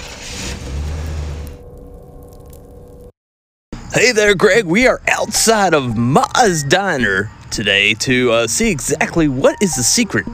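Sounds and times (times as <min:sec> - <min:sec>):
car engine revving as the car pulls away: 0:00.0 - 0:01.6
speech: 0:03.9 - 0:10.3.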